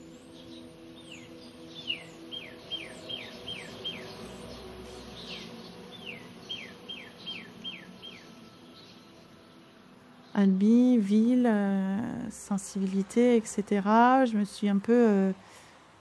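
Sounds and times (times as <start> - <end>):
steady high buzz of insects: 0.0 - 12.5
outdoor birds chirping in short descending notes: 0.0 - 13.8
low ambient hum: 0.0 - 15.9
speech: 10.4 - 15.5.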